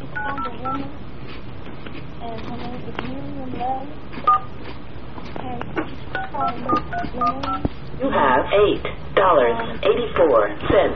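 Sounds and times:
touch-tone keypad beeps over a phone line: 0.2s - 0.9s, 4.3s - 4.5s, 6.2s - 7.6s
speech: 0.4s - 10.9s
person talking over a phone line: 6.2s - 7.7s.

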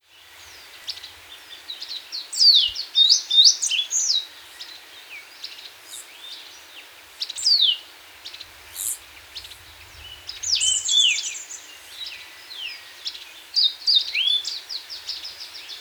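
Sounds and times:
Black-crested warbler Myiothlypis nigrocristata song: 0.0s - 15.7s.

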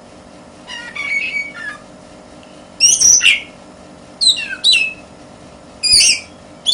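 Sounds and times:
steady low hum: 0.0s - 6.7s
Oriental magpie-robin song: 0.7s - 1.8s, 2.8s - 3.6s, 4.2s - 5.1s, 5.8s - 6.7s.

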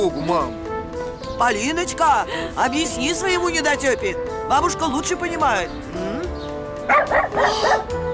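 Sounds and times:
speech: 0.0s - 0.6s, 1.3s - 6.3s, 6.9s - 8.0s
dog barking near a house: 6.9s - 7.9s.

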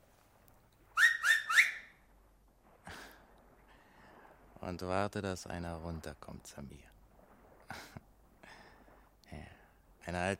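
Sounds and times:
shrill finger whistles sliding upward in pitch: 1.0s - 1.9s
speech: 4.6s - 7.0s, 10.1s - 10.3s.

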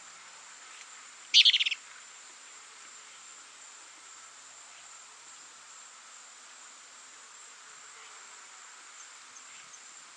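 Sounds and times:
faint background hiss: 0.0s - 10.1s
plain-crested elaenia Elaenia cristata cristata chattering: 1.4s - 1.8s.

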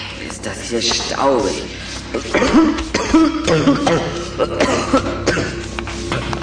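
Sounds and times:
speech: 0.7s - 5.1s
boy having a coughing fit in a dusty cellar: 2.1s - 6.3s.

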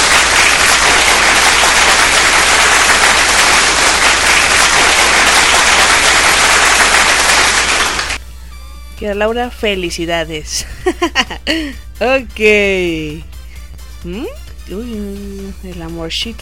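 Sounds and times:
dense applause from many hands clapping: 0.0s - 8.2s
speech: 9.0s - 13.3s, 14.0s - 16.3s.

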